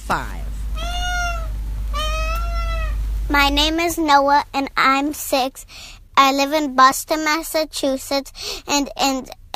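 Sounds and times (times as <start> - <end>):
low steady hum: 0.0 - 9.5
speech: 0.1 - 0.4, 3.3 - 9.5
cat meowing: 0.8 - 3.0.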